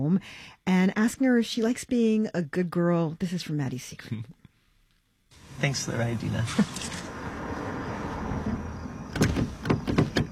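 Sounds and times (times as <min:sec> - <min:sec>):
speech: 0:00.0 - 0:04.4, 0:05.6 - 0:07.0
idling car hum: 0:05.3 - 0:10.3
stuck car door handle tugged with rattling clunks: 0:09.1 - 0:10.3.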